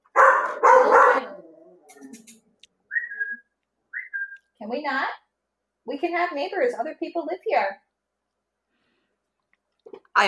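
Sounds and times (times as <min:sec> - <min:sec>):
female guard dog barking at a person near a house: 0:00.0 - 0:01.5
speech: 0:04.7 - 0:05.2, 0:05.9 - 0:07.8.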